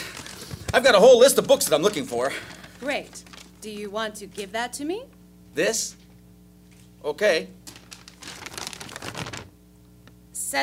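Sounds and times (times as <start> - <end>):
piece of paper rustling and crinkling: 0.0 - 4.5, 7.6 - 9.6
speech: 0.7 - 6.0, 7.0 - 7.6.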